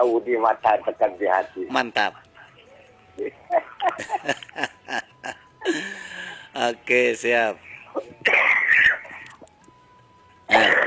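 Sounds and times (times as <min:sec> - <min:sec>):
speech: 0:00.0 - 0:02.3, 0:03.2 - 0:08.6
faint steady humming tone: 0:00.0 - 0:10.8
laughter: 0:03.5 - 0:06.1
harsh raspy cough-like burst: 0:08.3 - 0:09.1, 0:10.5 - 0:10.8.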